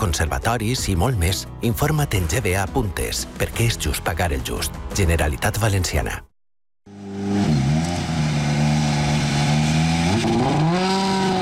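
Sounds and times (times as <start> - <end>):
speech: 0.0 - 6.3
rally car engine revving at a gravel rally in Utiel Spain: 6.9 - 11.4.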